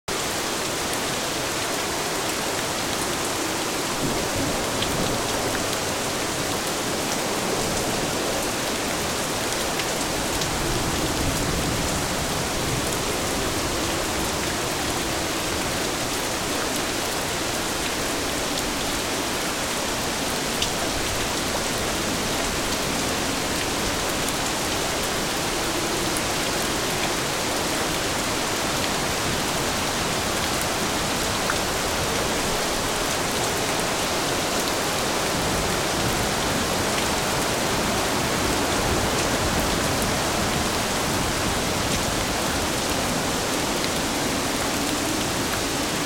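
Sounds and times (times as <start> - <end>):
rain: 0.1 - 46.0.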